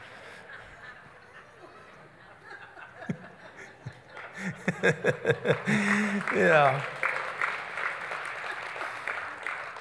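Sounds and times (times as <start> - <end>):
laughter: 0.0 - 7.0
audience clapping: 3.9 - 9.8
speech: 4.7 - 7.0.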